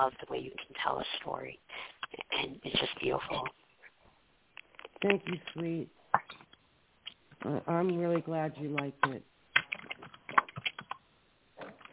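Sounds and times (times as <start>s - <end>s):
speech: 0.0s - 3.6s, 5.0s - 6.0s, 7.4s - 9.3s
computer keyboard typing on an unmuted call microphone: 8.7s - 11.0s.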